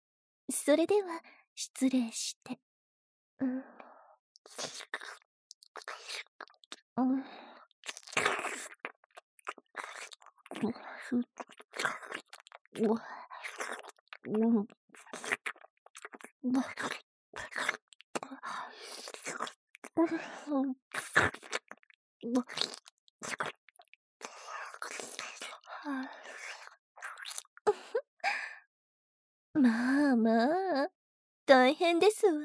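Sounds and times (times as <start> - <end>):
speech: 0.5 - 2.7, 3.4 - 3.8, 4.4 - 5.2, 7.0 - 7.5, 10.5 - 12.0, 12.8 - 15.4, 16.4 - 17.8, 18.4 - 21.6, 22.2 - 23.6, 29.6 - 32.4
tongue licking and slurping mouth sounds: 4.4 - 6.8, 7.7 - 27.6.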